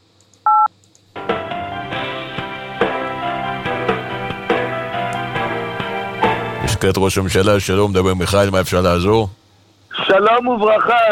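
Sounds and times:
telephone keypad DTMF tone for zero: 0:00.5 - 0:00.7
music with regular beats: 0:01.2 - 0:06.7
speech: 0:06.8 - 0:09.4, 0:10.2 - 0:11.1.

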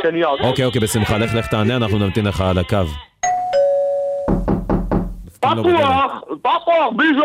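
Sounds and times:
speech: 0:00.0 - 0:03.1, 0:05.5 - 0:07.2
two-tone doorbell chime: 0:03.2 - 0:04.5
firm knocks on a door: 0:04.3 - 0:05.3.

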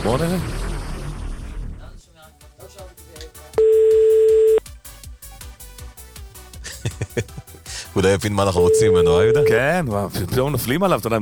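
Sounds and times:
speech: 0:00.0 - 0:00.7, 0:07.2 - 0:07.4, 0:08.0 - 0:11.2
rhythmic music: 0:02.0 - 0:11.2
telephone line ringing tone while calling a toy shop: 0:03.6 - 0:04.6, 0:08.6 - 0:09.6
laughter: 0:06.6 - 0:07.9.

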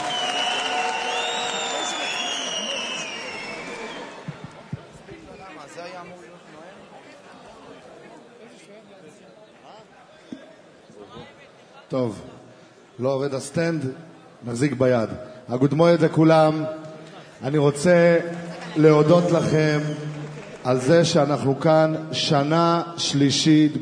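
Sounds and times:
audience whistles and cheers: 0:00.0 - 0:04.8, 0:19.3 - 0:20.6
live audience applauding a man introduced on stage: 0:00.0 - 0:04.9, 0:18.3 - 0:21.3
speech: 0:11.9 - 0:12.3, 0:13.0 - 0:16.8, 0:17.4 - 0:23.8.

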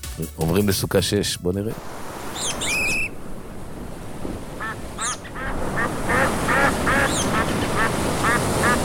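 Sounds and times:
speech: 0:00.2 - 0:02.0
group of ducks quacking: 0:04.6 - 0:08.8.

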